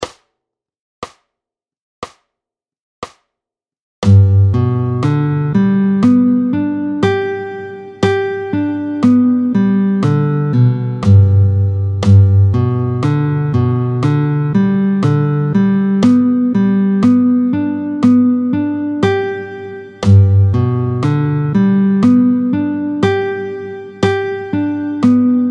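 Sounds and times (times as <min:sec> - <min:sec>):
G major arpeggios played with a pick at tempo 60: 0:04.1 - 0:25.5.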